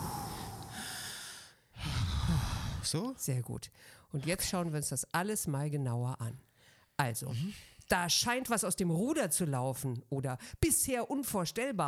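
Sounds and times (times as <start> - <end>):
person exhaling: 0.0 - 2.9
breath noise: 0.0 - 3.0, 3.8 - 4.1
speech: 2.9 - 11.8.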